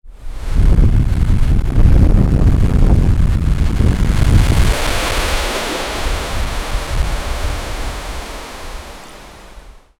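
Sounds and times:
massive tsunami wave: 0:00.4 - 0:09.9.

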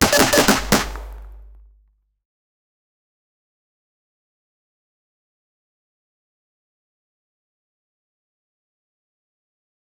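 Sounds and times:
short rifle shot: 0:00.0 - 0:01.6.

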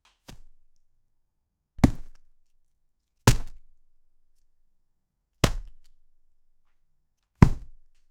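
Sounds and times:
body hit: 0:01.8 - 0:02.2, 0:03.3 - 0:03.6, 0:05.4 - 0:05.8, 0:07.4 - 0:07.8.

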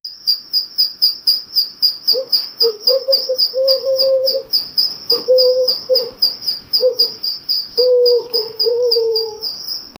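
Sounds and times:
chicken singing a bugle call: 0:02.1 - 0:09.8.

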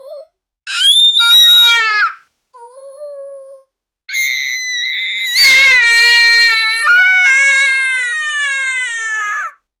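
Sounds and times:
child crying: 0:00.7 - 0:02.2, 0:04.1 - 0:09.6.

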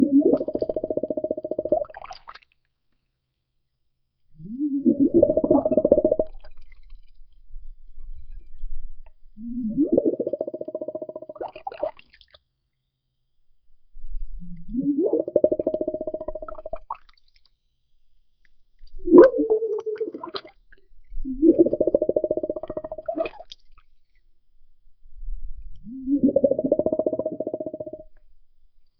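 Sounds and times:
underwater kit sounds: 0:00.0 - 0:02.4, 0:04.4 - 0:12.1, 0:14.5 - 0:17.4, 0:18.5 - 0:23.8, 0:25.4 - 0:28.3.

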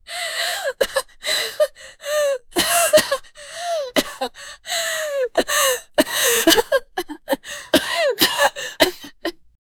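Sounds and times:
person gasping: 0:00.0 - 0:09.4
person with a sudden strained cough: 0:02.6 - 0:04.4, 0:05.2 - 0:09.4.

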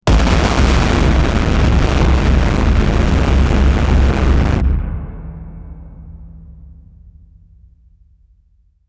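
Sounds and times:
loud deep war drums: 0:00.0 - 0:08.4.

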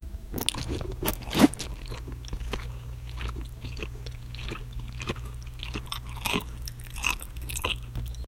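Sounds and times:
person eating breakfast food: 0:00.3 - 0:08.2.

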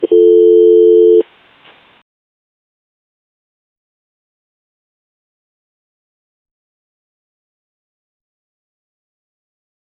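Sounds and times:
phone notification: 0:00.0 - 0:01.2.

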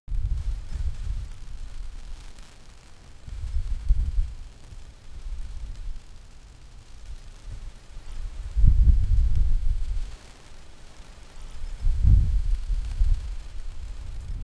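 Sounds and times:
flags flapping: 0:00.1 - 0:14.4.

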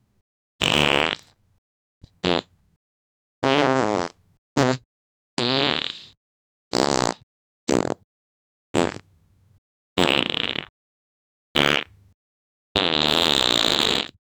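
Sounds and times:
fart sounds of various types: 0:00.6 - 0:01.4, 0:02.2 - 0:02.5, 0:03.4 - 0:04.8, 0:05.4 - 0:08.0, 0:08.8 - 0:09.0, 0:10.0 - 0:10.7, 0:11.6 - 0:11.9, 0:12.8 - 0:14.2.

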